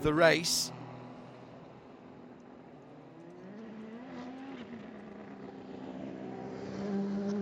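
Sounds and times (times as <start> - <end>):
speech: 0.0 - 0.8
race car engine accelerating out of the pits onto the track: 3.2 - 7.4.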